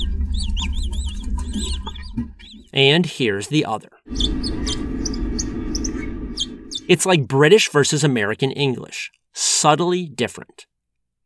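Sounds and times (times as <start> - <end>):
naked mole rat colony chirping: 0.0 - 2.8, 4.1 - 7.0
speech: 2.8 - 4.3, 6.9 - 10.7
rough rumbling low-frequency noise: 4.1 - 7.3.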